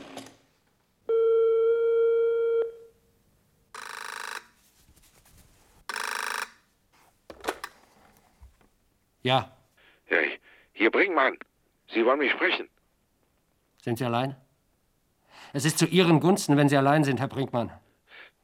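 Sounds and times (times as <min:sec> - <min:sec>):
bell-like telephone ring: 0:01.1 - 0:02.9, 0:03.8 - 0:04.6, 0:05.9 - 0:06.6
speech: 0:09.3 - 0:09.5, 0:10.8 - 0:12.7, 0:13.8 - 0:14.4, 0:15.5 - 0:17.8.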